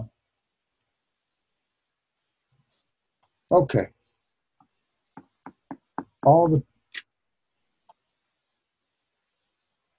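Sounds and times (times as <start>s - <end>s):
speech: 3.5s - 4.0s, 6.2s - 6.7s
knocking on a door: 5.2s - 6.3s.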